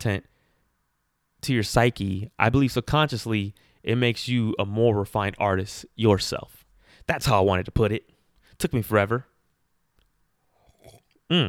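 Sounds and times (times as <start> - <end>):
speech: 0.0 - 0.3, 1.4 - 9.3, 11.3 - 11.4
slurping and mouth sounds from a quick sip of a drink: 10.6 - 11.4.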